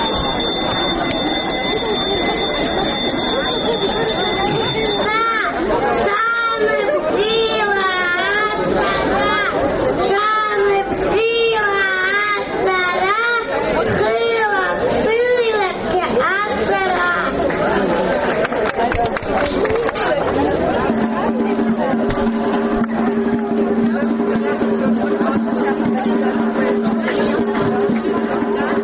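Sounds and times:
steady ringing tone: 0.0 - 5.1, 20.8 - 28.8
schoolchildren and parents chattering in a school yard in Abkhazia: 0.0 - 28.8.

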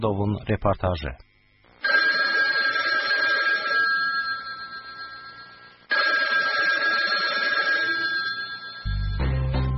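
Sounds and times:
speech: 0.0 - 1.3
ordinary telephone ringing: 1.8 - 9.6.

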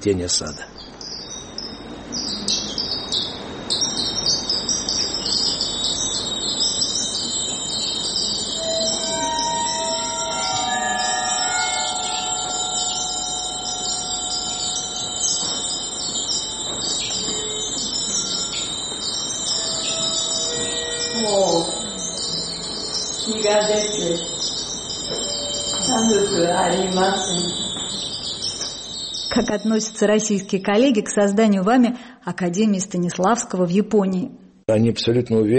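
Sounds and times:
speech: 0.0 - 0.8, 29.5 - 35.5
crystal bells ringing: 1.0 - 31.2
high shimmering hiss: 3.7 - 29.3.

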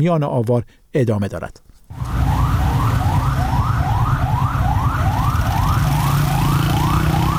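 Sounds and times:
speech: 0.0 - 2.1
fire engine and ambulance sirens wailing: 1.9 - 7.3
heavy low rumble of engines and traffic: 1.9 - 7.3.

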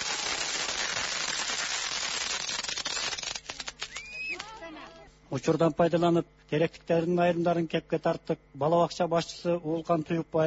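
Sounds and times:
fireworks salute crackling and banging: 0.0 - 4.8
speech: 5.3 - 10.4.

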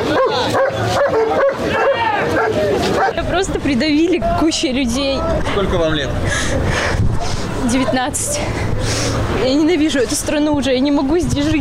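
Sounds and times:
voices and commotion: 0.0 - 11.5
police service dog barking with sharp yelping barks: 0.1 - 3.2
speech: 3.3 - 11.5.

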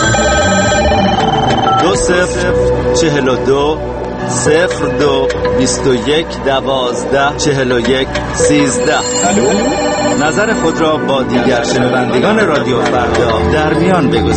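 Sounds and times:
telephone ringing effect for a radio station voicemail line: 0.0 - 2.4, 8.4 - 13.3
dense busy musical bed with sweeping tones: 0.0 - 14.3
speech: 2.1 - 14.3.

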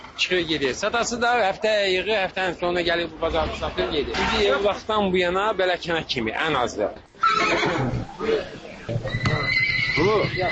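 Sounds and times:
speech: 0.2 - 9.2, 10.0 - 10.5
horse neighing at a livestock market: 7.2 - 10.5.

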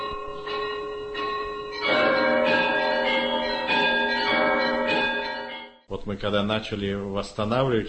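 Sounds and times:
festive krasny zvon peal of Russian church bells: 0.0 - 5.9
speech: 6.1 - 7.8.

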